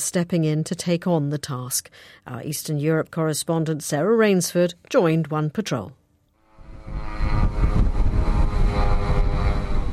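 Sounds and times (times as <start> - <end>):
speech: 0.0 - 6.0
Russian attack drones buzzing overhead over Kyiv Ukraine: 6.4 - 9.9.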